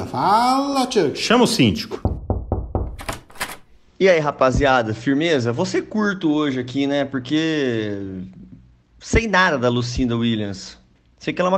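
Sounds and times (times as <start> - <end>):
speech: 0.2 - 2.1, 4.0 - 8.4, 9.0 - 11.5
heavy knocking on a door: 2.0 - 3.3
loud rattling bangs on a door: 2.1 - 3.8.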